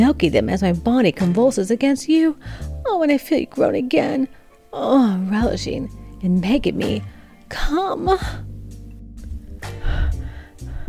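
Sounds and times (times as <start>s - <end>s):
speech: 0.0s - 8.5s
heavy breathing with sharp gasping inhales: 2.4s - 2.8s, 9.7s - 10.8s.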